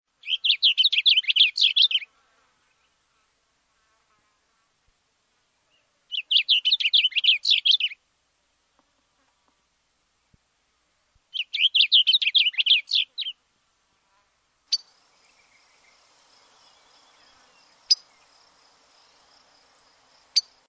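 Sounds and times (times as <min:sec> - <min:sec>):
blue grosbeak singing: 0:00.2 - 0:02.1, 0:05.7 - 0:08.0, 0:11.3 - 0:13.4, 0:14.7 - 0:20.6.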